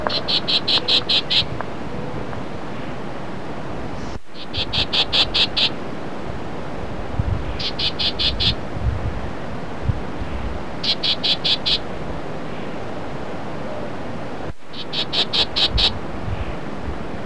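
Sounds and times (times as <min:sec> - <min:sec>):
Black-tailed gnatcatcher calling harsh raspy high notes: 0:00.0 - 0:01.6, 0:04.3 - 0:05.8, 0:07.5 - 0:08.6, 0:10.8 - 0:11.9, 0:14.7 - 0:16.6
steady low background noise: 0:00.0 - 0:17.2.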